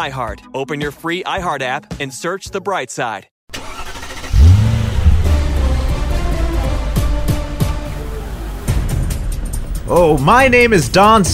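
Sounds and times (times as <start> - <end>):
speech: 0.0 - 3.3, 9.9 - 11.3
car engine revving: 3.6 - 9.8.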